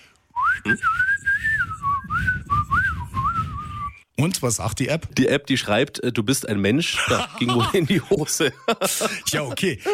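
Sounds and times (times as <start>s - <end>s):
person whistling a warbling bird-like tune into a phone: 0.4s - 4.0s
speech: 0.7s - 1.1s, 4.2s - 9.9s
laughter: 7.0s - 9.9s.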